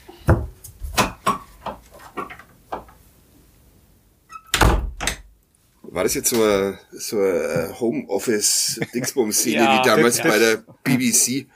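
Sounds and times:
wooden knocks and clunks of door being handled: 0.2 - 2.9
wooden door pulled shut with thud and rattle: 4.5 - 5.3
speech: 6.0 - 11.5
laughter: 8.5 - 10.6.

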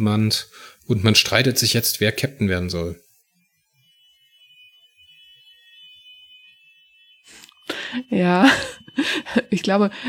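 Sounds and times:
speech: 0.0 - 3.0, 7.9 - 10.0
fire engine siren: 0.5 - 10.0.

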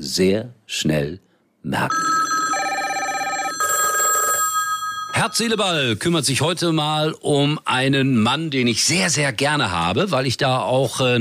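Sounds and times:
speech: 0.1 - 2.2, 5.2 - 11.1
telephone ringing with electronic warble: 1.9 - 5.6.

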